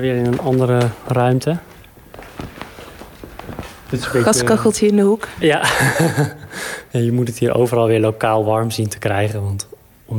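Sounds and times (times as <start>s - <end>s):
speech: 0.0s - 1.7s, 3.9s - 10.1s
footsteps on a hard floor in a side room: 0.0s - 4.7s
laughter: 5.5s - 6.8s.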